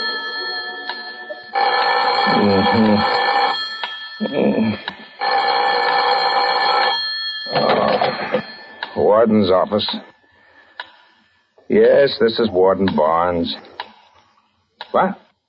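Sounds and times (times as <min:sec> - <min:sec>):
telephone bell ringing in an office: 0:00.0 - 0:09.2
speech: 0:02.3 - 0:03.3, 0:04.2 - 0:05.0, 0:09.1 - 0:10.1, 0:11.7 - 0:13.7, 0:14.9 - 0:15.2.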